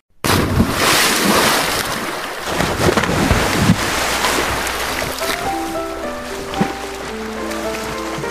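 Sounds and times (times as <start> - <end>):
cannonball jump splash into water: 0.2 - 5.6
churning, sloshing water: 0.3 - 8.2
faint melodic tone: 4.5 - 8.2.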